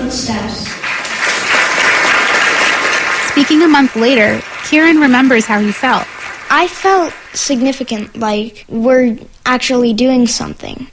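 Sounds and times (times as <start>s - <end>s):
speech: 0.1s - 0.8s, 3.4s - 10.9s
audience applause at public council hearing: 0.6s - 8.0s.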